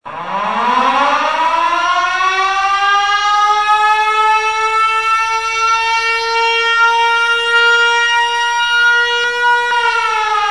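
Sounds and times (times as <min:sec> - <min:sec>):
siren: 0:00.0 - 0:10.4.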